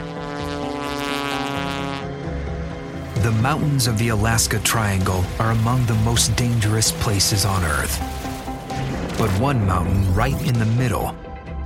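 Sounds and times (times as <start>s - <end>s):
small Skywagon propeller plane engine droning taking off from runway 33 in Alaska: 0.0s - 8.8s
speech: 3.3s - 8.3s, 9.2s - 11.2s.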